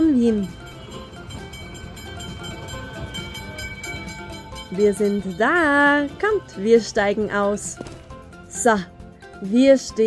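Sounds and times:
tram rolling along rails: 0.0s - 7.6s
speech: 0.3s - 0.6s, 4.7s - 7.9s, 8.6s - 10.0s.

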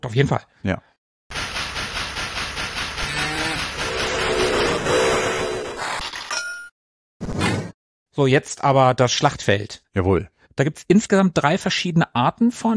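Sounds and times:
speech: 0.0s - 0.9s, 8.2s - 12.7s
steam locomotive chuffing and pushing out steam: 1.3s - 5.6s.

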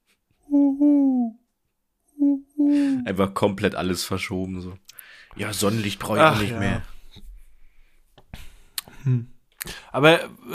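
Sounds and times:
person imitating owl hoots: 0.4s - 1.4s, 2.2s - 3.1s
speech: 3.0s - 6.9s, 9.0s - 10.5s.

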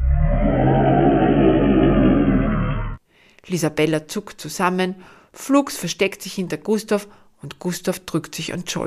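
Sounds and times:
deep loud roar echoing through a forest: 0.0s - 3.0s
speech: 3.5s - 8.8s.

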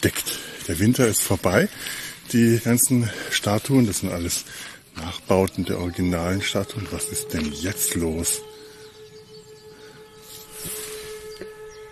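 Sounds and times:
speech: 0.0s - 8.5s
hissing outdoor noise: 0.0s - 11.9s
sirens wailing: 5.5s - 11.9s.

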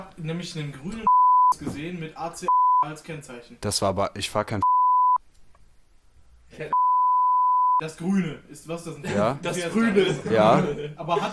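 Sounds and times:
speech: 0.0s - 4.7s, 6.6s - 6.8s, 7.8s - 11.3s
censor bleep: 1.1s - 1.6s, 2.5s - 2.8s, 4.6s - 5.2s, 6.7s - 7.8s
laughter: 9.1s - 11.3s.

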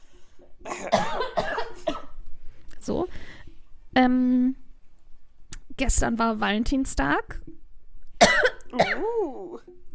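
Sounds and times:
speech: 0.5s - 1.2s, 4.0s - 4.6s, 5.8s - 7.6s
one person coughing harshly: 0.7s - 2.1s, 8.2s - 9.4s.

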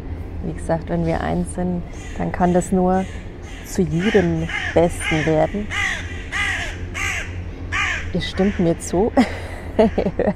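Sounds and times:
steady low rumble: 0.0s - 10.3s
speech: 0.4s - 6.0s, 8.1s - 10.3s
ravens cawing harshly: 1.9s - 9.0s, 9.7s - 10.3s
laughter: 9.2s - 10.3s.

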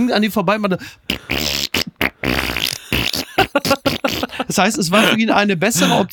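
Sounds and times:
speech: 0.1s - 1.6s, 4.5s - 6.1s
older man making mouth fart noises imitating a song: 1.0s - 4.5s.

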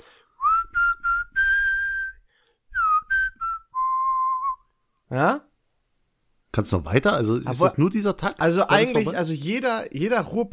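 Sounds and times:
person whistling a melody: 0.4s - 4.7s
speech: 5.1s - 5.5s, 6.6s - 10.5s.

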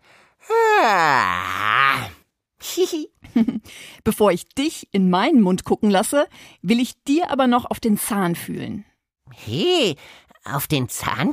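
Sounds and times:
long loud yawn sliding into a groan: 0.4s - 2.2s
speech: 4.1s - 11.3s.

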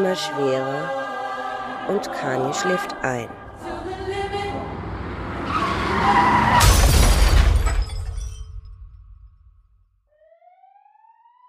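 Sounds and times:
speech: 0.0s - 1.0s, 1.9s - 3.8s, 6.0s - 6.5s
Lexus tire screech while skidding: 3.3s - 8.8s
Lexus crashing head-on into another vehicle: 3.4s - 9.7s
glass shattering in a car crash: 6.4s - 9.2s.

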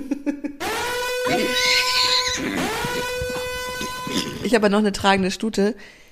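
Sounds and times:
horse neighing sound effect: 1.3s - 4.5s
speech: 4.5s - 6.0s.

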